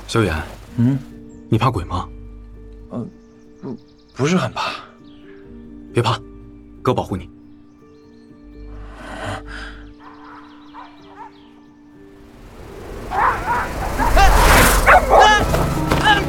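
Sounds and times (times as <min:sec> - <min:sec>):
speech: 0:00.1 - 0:02.2, 0:02.9 - 0:04.9, 0:06.0 - 0:07.3
mad dog barking and yelping: 0:10.0 - 0:11.4, 0:13.1 - 0:15.5
steady low tones: 0:12.0 - 0:15.2.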